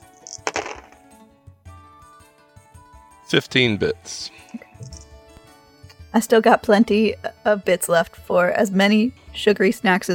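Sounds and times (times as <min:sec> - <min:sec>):
dice rattling and clattering across a hard surface: 0:00.1 - 0:01.0
speech: 0:03.3 - 0:04.6, 0:06.1 - 0:10.1.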